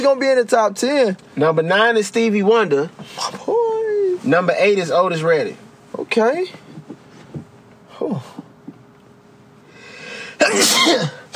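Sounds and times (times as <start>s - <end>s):
speech: 0.1s - 3.3s, 4.3s - 6.6s, 10.5s - 11.2s
sharp inhale: 9.7s - 10.4s
loud sneeze: 10.3s - 11.3s.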